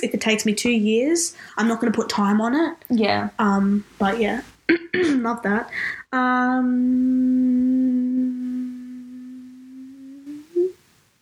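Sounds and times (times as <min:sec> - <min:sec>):
speech: 0:00.0 - 0:07.7
person humming a single long steady note: 0:06.1 - 0:10.8.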